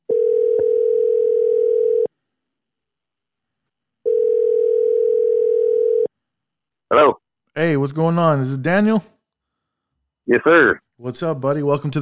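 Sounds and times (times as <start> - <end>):
phone ringback tone of an outgoing call: 0.1 - 2.1, 4.0 - 6.1
speech: 7.0 - 9.1, 10.3 - 12.0.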